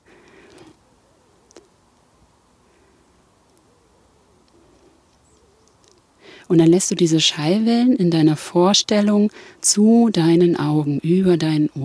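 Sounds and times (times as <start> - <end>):
faint soft birds cooing: 0.0 - 1.8, 2.6 - 6.0
quiet hiss of background noise: 0.0 - 11.8
rustle: 0.0 - 11.8
speech: 6.5 - 11.8.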